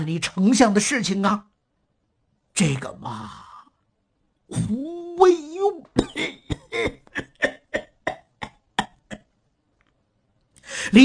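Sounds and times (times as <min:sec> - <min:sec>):
speech: 0:00.0 - 0:01.5, 0:02.6 - 0:03.4, 0:04.5 - 0:07.0, 0:10.8 - 0:11.0
violent coughing: 0:05.9 - 0:09.4.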